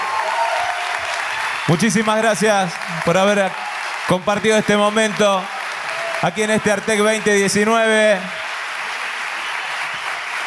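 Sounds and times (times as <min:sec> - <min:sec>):
audience applauding at an arts education event: 0:00.0 - 0:10.4
speech: 0:01.7 - 0:05.6, 0:06.2 - 0:08.4.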